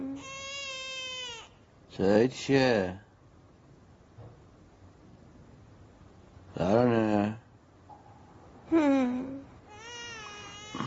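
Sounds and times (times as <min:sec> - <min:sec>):
baby crying: 0:00.2 - 0:01.6, 0:09.7 - 0:10.8
speech: 0:02.0 - 0:03.0, 0:06.6 - 0:07.2.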